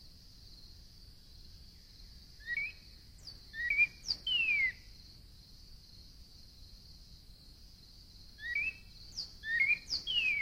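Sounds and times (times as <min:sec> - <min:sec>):
steady high background hiss: 0:00.0 - 0:10.3
Northern cardinal song of clear whistled notes: 0:02.4 - 0:02.9, 0:03.5 - 0:04.8, 0:08.4 - 0:10.3.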